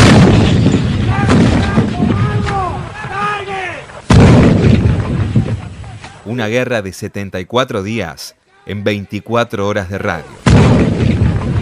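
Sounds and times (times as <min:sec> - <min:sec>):
artillery fire in a war: 0:00.0 - 0:03.2, 0:03.9 - 0:06.2, 0:10.4 - 0:11.6
people shouting an order to fire in a war: 0:01.0 - 0:04.0
speech: 0:06.4 - 0:11.3.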